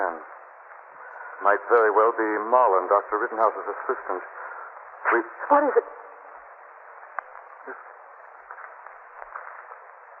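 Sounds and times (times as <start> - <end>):
steady hiss: 0.0 - 10.1
speech: 1.4 - 4.5, 5.1 - 5.8.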